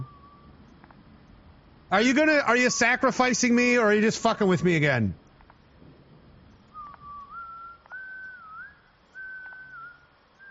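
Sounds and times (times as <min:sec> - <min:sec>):
person whistling a slow wandering tune while walking outdoors: 0:00.0 - 0:00.5, 0:06.7 - 0:10.4
steady hiss: 0:00.0 - 0:10.4
faint clicks: 0:00.6 - 0:01.4, 0:05.2 - 0:08.5, 0:09.2 - 0:10.4
speech: 0:01.9 - 0:05.2.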